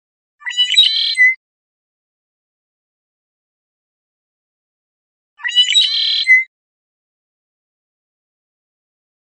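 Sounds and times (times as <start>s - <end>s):
red-winged blackbird song: 0.4s - 1.4s, 5.4s - 6.5s.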